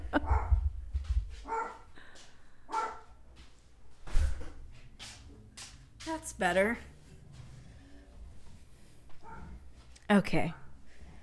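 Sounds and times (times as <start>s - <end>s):
dog barking in short bursts: 0.1s - 0.7s, 1.5s - 1.9s, 2.7s - 3.1s, 9.2s - 9.6s
dog's quick sharp yips: 1.5s - 1.8s, 2.7s - 3.0s, 9.3s - 9.5s
speech: 6.4s - 6.9s, 10.1s - 10.6s.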